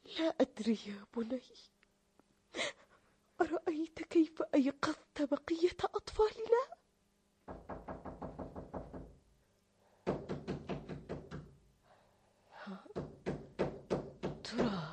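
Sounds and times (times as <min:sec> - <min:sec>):
speech: 0:00.2 - 0:01.8, 0:03.6 - 0:06.8
knocking on a door: 0:07.4 - 0:09.2, 0:10.0 - 0:11.6, 0:12.9 - 0:14.9.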